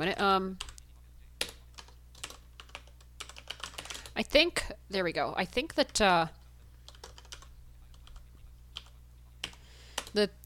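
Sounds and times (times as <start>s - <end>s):
speech: 0.0s - 0.7s, 4.2s - 6.4s, 10.1s - 10.4s
keys tapping on a computer keyboard as a password is typed: 0.6s - 0.8s, 1.4s - 4.2s, 6.8s - 10.2s.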